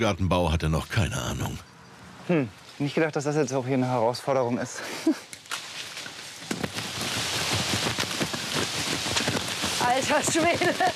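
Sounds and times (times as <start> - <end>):
speech: 0.0 - 1.7, 2.3 - 5.3, 9.9 - 10.9
steady rain falling: 6.5 - 10.9.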